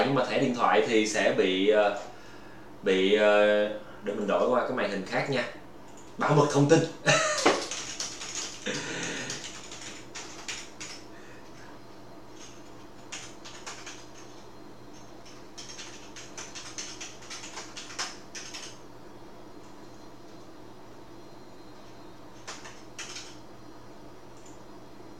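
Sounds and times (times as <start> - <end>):
speech: 0.1 - 2.2, 2.8 - 5.6, 6.2 - 7.5
card payment details typed on a computer keyboard: 7.1 - 11.1, 12.4 - 18.8, 22.4 - 23.4.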